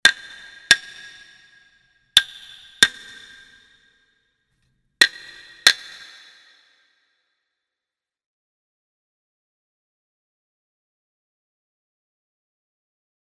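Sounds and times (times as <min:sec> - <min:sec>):
hyoshigi wooden clappers: 0:00.0 - 0:03.8, 0:05.0 - 0:06.7.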